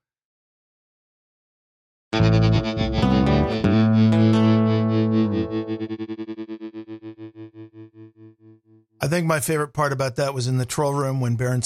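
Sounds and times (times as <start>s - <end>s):
loud heavily distorted break music: 2.2s - 8.1s
speech: 9.0s - 11.6s.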